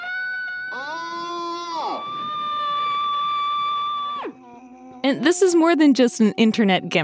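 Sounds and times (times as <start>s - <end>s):
person screaming: 0.0s - 5.0s
speech: 5.1s - 7.0s.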